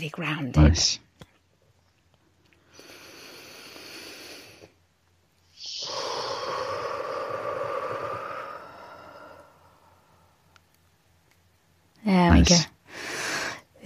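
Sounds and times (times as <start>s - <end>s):
speech: 0.0s - 1.1s, 12.1s - 12.7s
deep breath: 2.6s - 4.8s, 5.6s - 10.6s, 12.8s - 13.8s.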